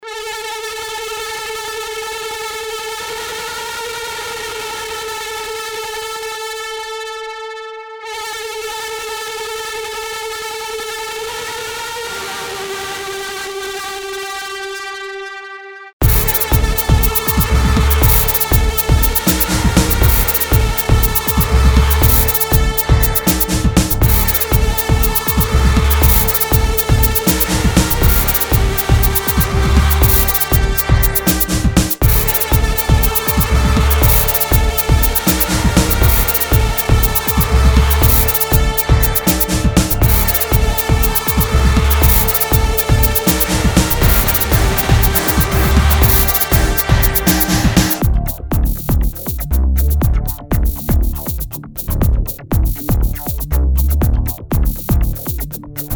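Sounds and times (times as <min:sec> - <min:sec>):
looping distorted synth drum noise rhythm: 0:16.0 - 0:55.9.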